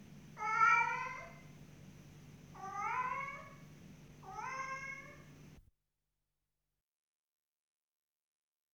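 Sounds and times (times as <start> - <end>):
faint low hum: 0.0 - 5.7
cat giving long whiny meows: 0.4 - 1.5, 2.6 - 3.6, 4.2 - 5.3.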